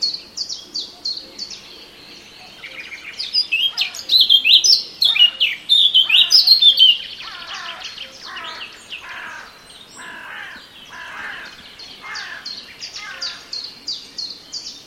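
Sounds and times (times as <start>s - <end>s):
Eurasian blackcap singing a rich warble of fluty notes: 0.0s - 14.8s.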